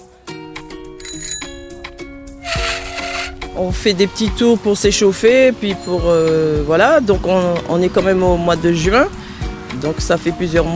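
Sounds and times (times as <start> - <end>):
bicycle bell ringing: 1.0 - 3.4, 5.7 - 6.3
rustling noise: 2.4 - 3.5
speech: 3.6 - 9.2, 9.8 - 10.7.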